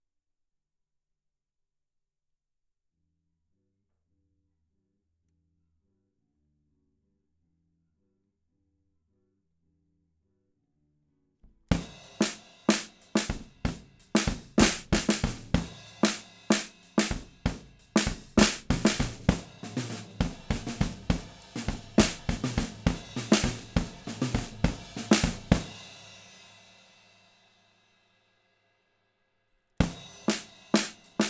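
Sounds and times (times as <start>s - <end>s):
inverted drums: 11.7s - 26.2s, 29.8s - 31.2s.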